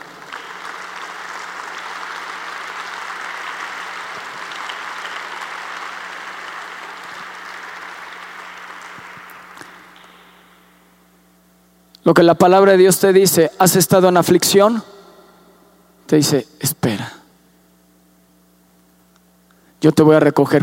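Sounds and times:
large audience applauding loudly: 0:00.0 - 0:10.6
speech: 0:12.1 - 0:14.9, 0:16.1 - 0:17.2, 0:19.8 - 0:20.6.

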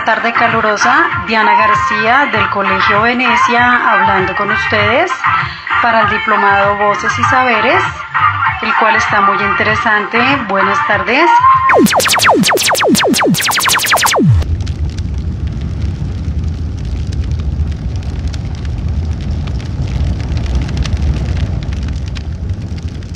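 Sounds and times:
speech: 0:00.0 - 0:08.0, 0:08.6 - 0:12.7
falling whistle-like tones: 0:11.7 - 0:14.4
campfire crackling with burning firewood: 0:14.5 - 0:23.1.

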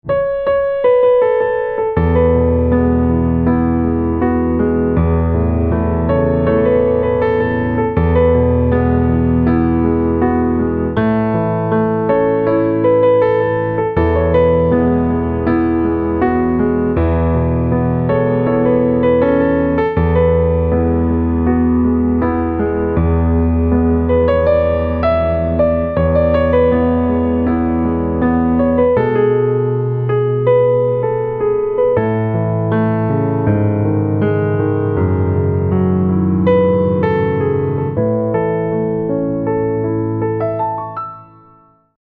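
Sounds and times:
instrumental piano ringtone: 0:00.0 - 0:41.9.

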